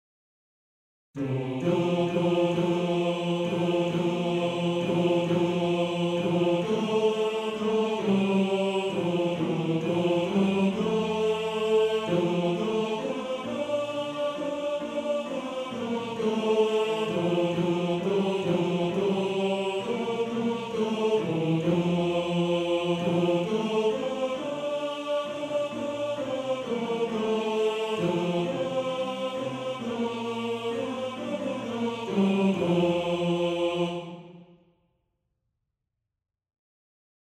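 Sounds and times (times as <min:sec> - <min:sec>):
second tenor section of a male choir singing: 0:01.2 - 0:34.6.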